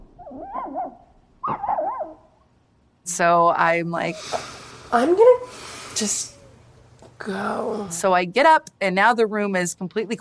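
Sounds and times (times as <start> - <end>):
puppy crying, whimpering and yelping: 0.2 - 2.3
speech: 3.1 - 6.4, 7.2 - 10.1.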